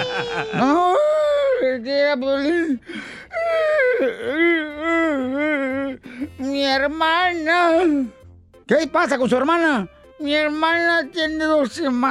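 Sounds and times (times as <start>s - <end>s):
laughter: 0.0s - 1.5s
person crying and whimpering with high-pitched wails: 0.0s - 6.7s
speech: 0.2s - 0.9s, 1.8s - 12.0s
short gasping breaths: 2.7s - 3.7s.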